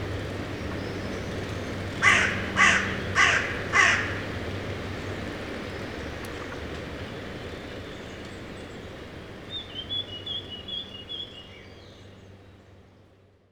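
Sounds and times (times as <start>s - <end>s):
low rumbling background noise: 0.0s - 13.5s
carrion crow calling rasping caws on the banks of the Rhône, France: 2.0s - 4.4s.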